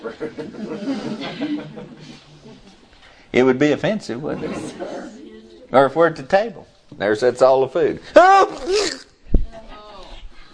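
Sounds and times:
speech: 0:00.0 - 0:02.7, 0:03.3 - 0:05.1, 0:05.7 - 0:09.0
laughter: 0:00.0 - 0:03.0
person fake sneezing without covering the mouth: 0:08.1 - 0:09.2.

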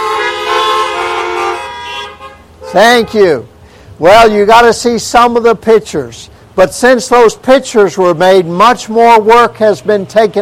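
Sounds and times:
car horns honking together: 0:00.0 - 0:03.5
speech: 0:02.7 - 0:10.4.

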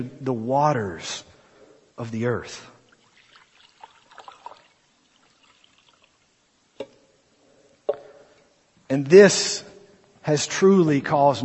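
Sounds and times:
speech: 0:00.0 - 0:01.3, 0:02.0 - 0:02.8, 0:08.9 - 0:09.7, 0:10.3 - 0:11.4
water scooped by hand trickling and splashing: 0:02.9 - 0:06.3.

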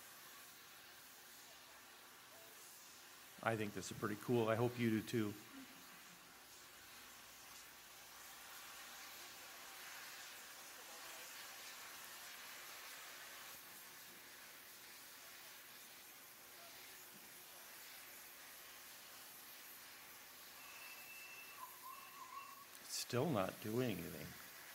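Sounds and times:
steam hissing from a steam locomotive pulling out of York Station in England: 0:00.0 - 0:24.7
speech: 0:03.4 - 0:05.5, 0:23.1 - 0:24.4
brief whistle-like tone: 0:20.5 - 0:22.7.

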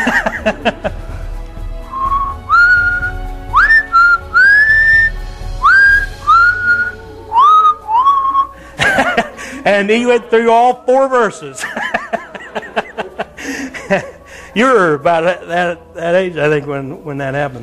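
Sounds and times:
laughter: 0:00.0 - 0:01.3, 0:06.3 - 0:14.8
speech: 0:00.2 - 0:01.1, 0:09.7 - 0:12.6, 0:13.9 - 0:17.6
person whistling a tune: 0:01.9 - 0:08.6.

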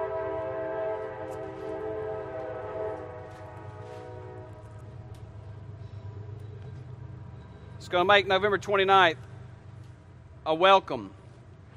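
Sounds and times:
two train horns blaring in sustained overlapping tones: 0:00.0 - 0:06.0
low rumble of rail traffic: 0:00.0 - 0:11.7
speech: 0:07.8 - 0:09.3, 0:10.4 - 0:11.2.

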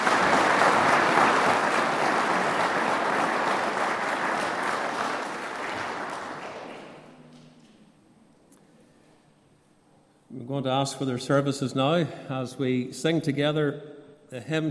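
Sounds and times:
crowd applauding: 0:00.0 - 0:07.3
speech: 0:10.6 - 0:14.6.

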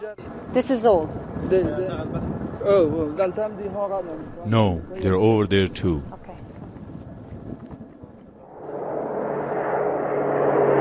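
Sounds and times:
speech: 0:00.0 - 0:06.2
C-17 military transport aircraft departing from an airport runway: 0:08.4 - 0:10.7.

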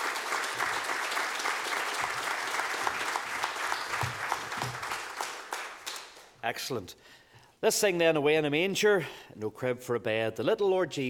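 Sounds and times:
congregation applauding: 0:00.0 - 0:06.4
speech: 0:06.5 - 0:11.0.

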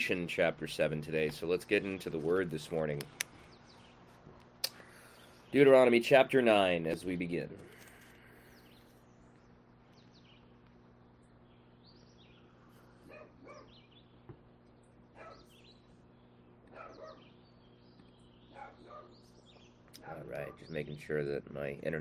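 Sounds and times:
speech: 0:00.0 - 0:03.3, 0:05.5 - 0:07.7, 0:20.4 - 0:21.9
faint birds chirping outdoors: 0:00.0 - 0:21.9
steady electrical hum: 0:00.0 - 0:21.9
dog barking excitedly: 0:13.0 - 0:13.8, 0:15.2 - 0:15.5, 0:16.7 - 0:17.2, 0:18.5 - 0:19.2.

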